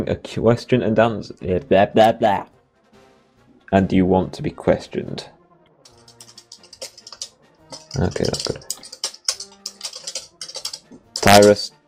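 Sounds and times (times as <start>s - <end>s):
speech: 0.0s - 2.6s, 3.7s - 5.4s, 7.9s - 8.7s, 11.3s - 11.8s
typing on a computer keyboard: 5.9s - 11.6s.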